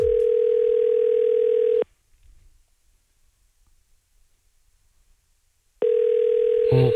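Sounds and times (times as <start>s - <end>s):
phone line ringing with a steady electronic tone: 0.0s - 1.8s, 5.8s - 6.9s.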